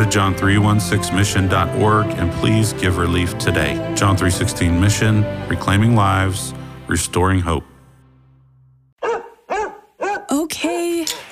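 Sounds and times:
speech: 0:00.0 - 0:07.7
dog barking: 0:09.0 - 0:11.0.

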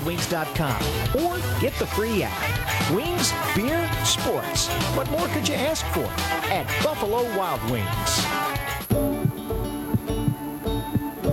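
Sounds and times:
speech: 0:00.0 - 0:08.7
soft sustained musical bed: 0:00.0 - 0:11.3
steady heartbeat of deep paired thumps: 0:08.9 - 0:11.3.

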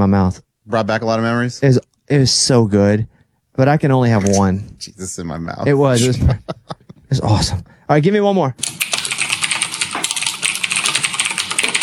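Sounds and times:
speech: 0:00.0 - 0:08.8
laughter: 0:05.8 - 0:07.4
rapid typing on a mechanical keyboard: 0:08.6 - 0:11.8.

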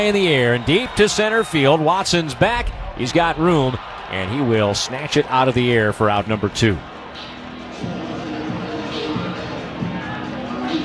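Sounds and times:
speech: 0:00.0 - 0:08.0
baseball stadium crowd cheering and murmuring: 0:00.0 - 0:10.8.

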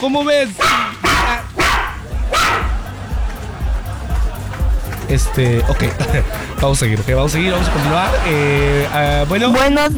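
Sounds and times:
speech: 0:00.0 - 0:01.0, 0:05.1 - 0:09.9
laughter: 0:00.0 - 0:09.9
small dog barking and yipping: 0:00.5 - 0:02.9.

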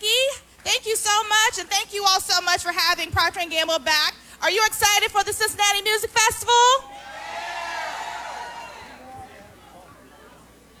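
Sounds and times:
speech: 0:00.8 - 0:06.9
dense murmur of many overlapping voices from a large crowd at a morning event: 0:06.8 - 0:10.7.

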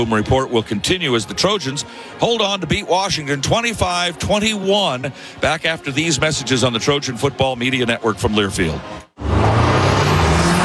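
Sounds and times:
speech: 0:00.0 - 0:09.0
Audi car engine and road rumble while driving: 0:09.2 - 0:10.6.

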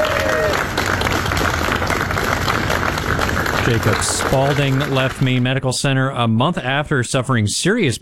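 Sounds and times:
crowd clapping as an injured firefighter leaves a hospital in Maine: 0:00.0 - 0:05.6
speech: 0:03.6 - 0:08.0.

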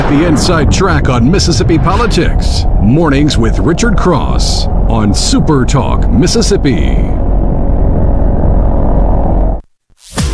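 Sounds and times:
thunder rumble: 0:00.0 - 0:09.6
speech: 0:00.1 - 0:07.3.

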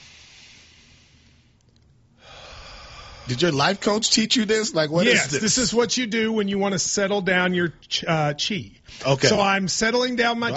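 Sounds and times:
slow deep breath taken as a calming breathing exercise: 0:00.0 - 0:03.4
speech: 0:03.3 - 0:10.5.

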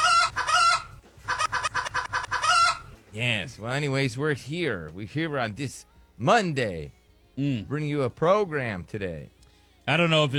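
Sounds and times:
rooster crowing: 0:00.0 - 0:01.7, 0:02.3 - 0:02.9
rooster clucking in choppy bursts: 0:00.0 - 0:03.0
speech: 0:03.1 - 0:10.3.

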